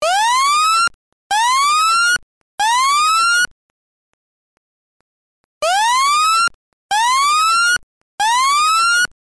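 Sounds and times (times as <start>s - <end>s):
temporal coded slow whoop fire alarm: 0.0s - 3.5s, 5.6s - 9.1s.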